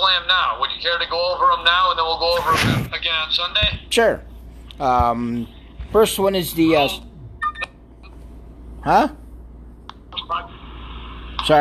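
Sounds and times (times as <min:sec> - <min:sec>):
faint hum: 0:00.0 - 0:11.5
speech: 0:00.2 - 0:07.1, 0:08.8 - 0:09.2
mobile phone ringing: 0:07.4 - 0:07.8.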